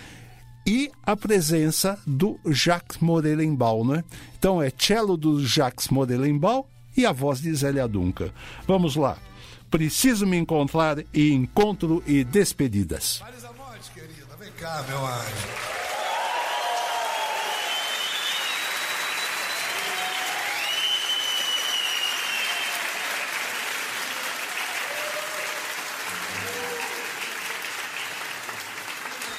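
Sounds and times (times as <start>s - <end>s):
speech: 0.7s - 13.6s, 14.6s - 15.7s
large crowd audience applause: 14.6s - 29.3s
cheers from the crowd: 15.3s - 29.3s
faint whistles from the crowd: 17.2s - 22.8s.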